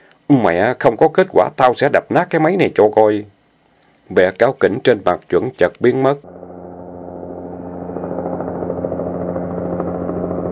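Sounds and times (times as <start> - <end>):
speech: 0.3 - 3.3, 4.1 - 6.4
helicopter rotor blades thrumming: 6.2 - 10.4.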